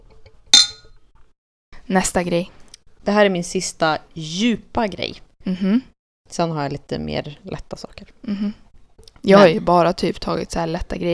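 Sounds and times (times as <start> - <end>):
glass clink in a toast: 0.6 - 0.9
speech: 1.9 - 8.6, 9.2 - 11.1.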